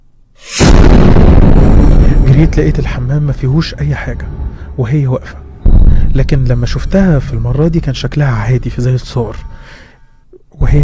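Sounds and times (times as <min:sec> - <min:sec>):
big explosion in a bathroom: 0:00.5 - 0:08.0
dense roaring rumble: 0:00.5 - 0:08.1
speech: 0:02.4 - 0:05.4, 0:06.1 - 0:09.5, 0:10.6 - 0:10.8.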